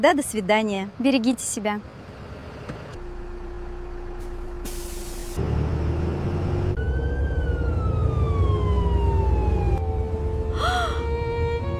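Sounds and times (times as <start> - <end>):
speech: 0.0 - 2.0
large bus engine rumbling as it slows: 0.0 - 11.7
air brake hiss of a bus: 4.3 - 5.4.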